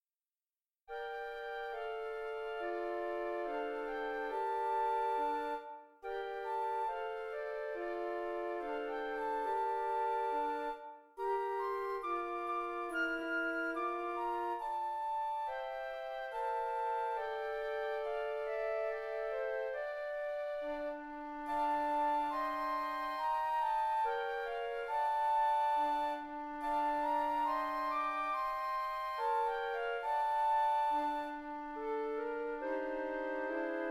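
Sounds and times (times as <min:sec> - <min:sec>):
flute quartet playing a minuet: 0:00.9 - 0:33.8.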